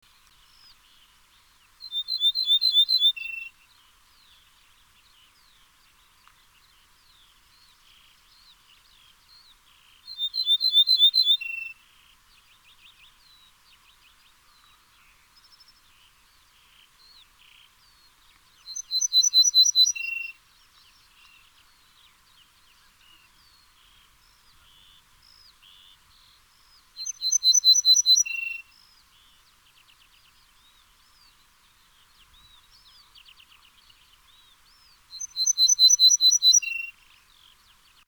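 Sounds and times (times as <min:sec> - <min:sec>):
ortolan bunting singing: 0:00.5 - 0:03.6, 0:10.0 - 0:11.8, 0:15.2 - 0:20.4, 0:21.0 - 0:38.0.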